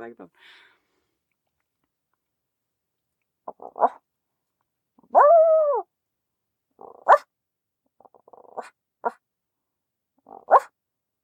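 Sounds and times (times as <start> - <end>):
speech: 0.0 - 0.7, 3.5 - 4.0
dog barking: 3.5 - 4.0, 6.8 - 7.3, 8.5 - 9.2, 10.3 - 10.7
dog whiny yelp: 3.5 - 4.0, 5.0 - 5.8, 6.8 - 7.3, 8.3 - 9.2, 10.3 - 10.7.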